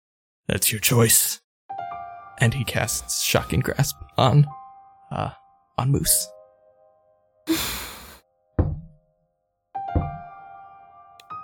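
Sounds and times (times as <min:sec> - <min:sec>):
speech: 0:00.5 - 0:01.4, 0:02.4 - 0:06.4, 0:07.5 - 0:07.8
breathy exhale: 0:07.5 - 0:08.2.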